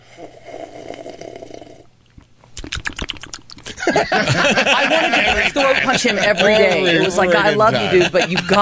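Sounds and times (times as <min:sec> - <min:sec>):
person slurping Mountain Dew: 0:00.0 - 0:01.9, 0:02.6 - 0:03.8
wet lip smacks and clicks: 0:00.8 - 0:03.8
laughter: 0:03.7 - 0:08.6
speech: 0:03.9 - 0:08.6.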